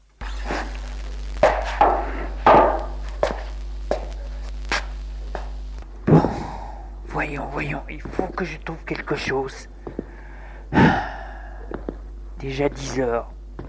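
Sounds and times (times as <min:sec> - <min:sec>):
low steady hum: 0:00.0 - 0:13.6
footsteps of someone walking around a room: 0:00.2 - 0:05.6, 0:09.8 - 0:10.2
speech: 0:07.2 - 0:09.7, 0:12.4 - 0:13.4.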